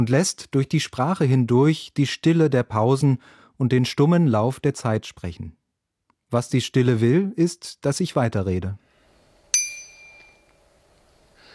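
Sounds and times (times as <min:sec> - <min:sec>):
speech: 0:00.0 - 0:05.6, 0:06.3 - 0:08.8
BBB 120 bicycle bell ringing: 0:09.5 - 0:11.3.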